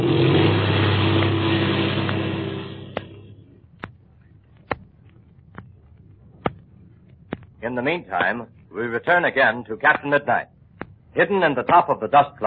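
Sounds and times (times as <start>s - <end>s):
cold airplane engine roaring and revving during takeoff: 0.0s - 3.6s
faint hum: 0.0s - 12.4s
speech: 7.7s - 10.5s, 11.1s - 12.4s.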